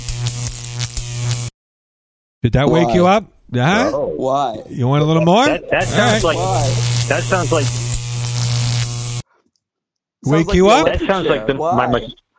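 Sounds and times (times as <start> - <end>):
electric mosquito zapper frying a mosquito: 0.0 - 1.5, 5.4 - 9.2
speech: 2.4 - 7.9, 10.2 - 12.2
laughter: 3.7 - 7.8, 10.4 - 12.2.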